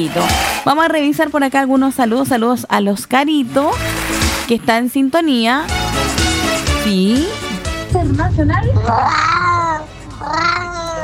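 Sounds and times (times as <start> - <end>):
speech: 0.0 - 5.8, 6.8 - 7.4, 8.0 - 9.4
kitten meowing: 8.8 - 11.0.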